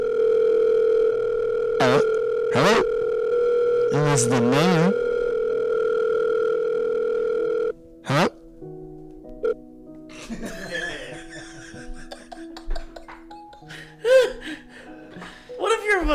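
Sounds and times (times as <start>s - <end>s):
telephone ringing with a steady electronic tone: 0.0s - 8.2s
speech: 3.9s - 5.0s
laughter-like bursts: 10.1s - 14.6s.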